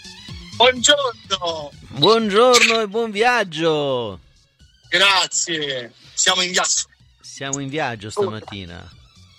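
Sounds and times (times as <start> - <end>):
speech: 0.7 - 4.3, 4.9 - 9.0
WhatsApp voice call ringing tone: 8.2 - 8.6
faint melodic sound: 8.2 - 8.7.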